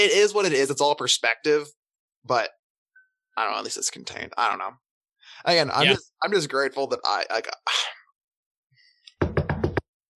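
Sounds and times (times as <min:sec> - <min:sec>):
speech: 0:00.0 - 0:02.6, 0:03.4 - 0:08.0
knuckles knocking on wood: 0:09.2 - 0:09.9.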